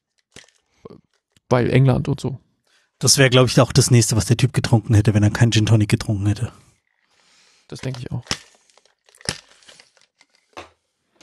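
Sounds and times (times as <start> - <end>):
speech: 0.8 - 2.4, 3.0 - 6.7, 7.7 - 8.5
crinkling and tearing of a new vermouth bottle being opened with difficulty: 7.8 - 10.6.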